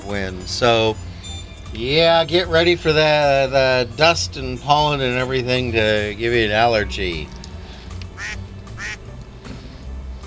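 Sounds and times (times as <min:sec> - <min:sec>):
low rumble: 0:00.0 - 0:10.2
speech: 0:00.1 - 0:01.1, 0:01.7 - 0:07.4
duck quacking: 0:08.2 - 0:09.0.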